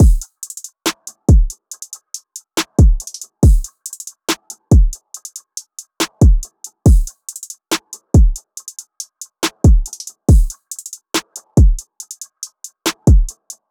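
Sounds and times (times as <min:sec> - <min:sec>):
drum loop: 0:00.0 - 0:13.6.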